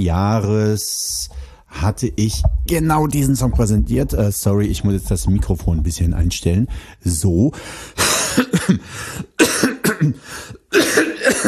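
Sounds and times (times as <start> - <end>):
speech: 0.0 - 9.3, 10.0 - 11.0
harsh coughing fit: 8.0 - 11.4.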